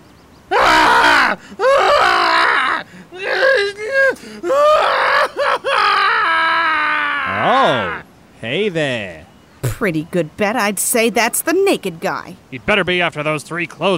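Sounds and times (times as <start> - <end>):
man yelling and screaming: 0.5 - 8.0
speech: 1.3 - 1.6, 4.1 - 4.8, 7.4 - 9.2, 9.8 - 13.9.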